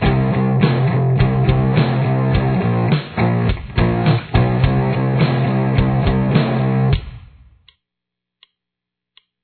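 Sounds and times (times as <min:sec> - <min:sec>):
guitar intro: 0:00.0 - 0:07.0.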